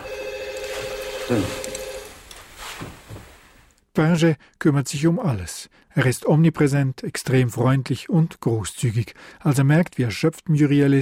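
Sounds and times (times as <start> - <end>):
telephone ringing with electronic trill: 0.0 - 2.2
noise: 0.0 - 10.9
speech: 1.3 - 1.7, 4.0 - 10.9.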